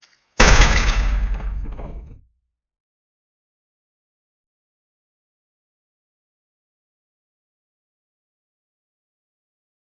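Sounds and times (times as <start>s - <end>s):
shelter structure failing and collapsing: 0.4s - 2.3s.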